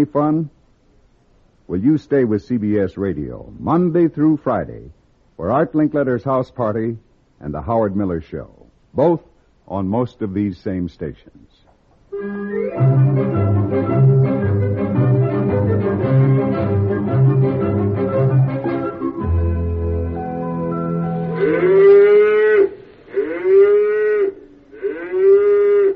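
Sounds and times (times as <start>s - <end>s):
speech: 0.0s - 0.6s, 1.7s - 14.5s
steady rhythmic music: 12.1s - 21.4s
cows mooing: 21.2s - 25.9s.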